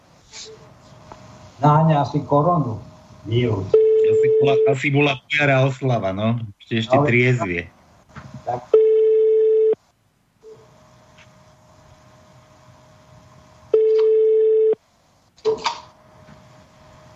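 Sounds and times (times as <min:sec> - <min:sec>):
speech: 0:01.6 - 0:07.8, 0:08.5 - 0:08.8
telephone ringback tone with no answer: 0:08.8 - 0:09.8, 0:13.7 - 0:14.8.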